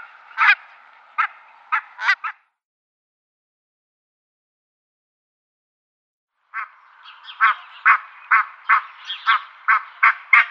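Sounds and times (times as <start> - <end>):
barnacle goose yelping and yapping calls: 0.4 - 0.6, 1.2 - 2.4, 7.3 - 10.5.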